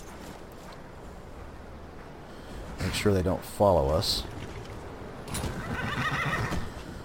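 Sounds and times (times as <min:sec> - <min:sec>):
speech: 0:02.8 - 0:04.4
horse whinnying loudly: 0:05.3 - 0:06.7.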